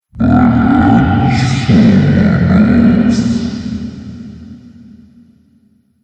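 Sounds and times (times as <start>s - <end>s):
drunk zombie groaning horror sound effect: 0.1s - 4.3s.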